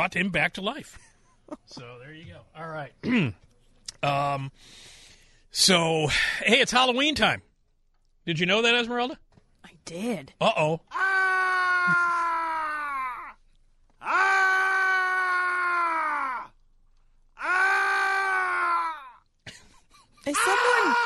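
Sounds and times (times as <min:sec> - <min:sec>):
speech: 0:00.0 - 0:03.4, 0:04.0 - 0:07.5, 0:08.2 - 0:09.2, 0:09.8 - 0:11.3, 0:20.2 - 0:21.0
man screaming and groaning: 0:10.9 - 0:13.4, 0:14.0 - 0:16.6, 0:17.4 - 0:19.2, 0:20.4 - 0:21.0.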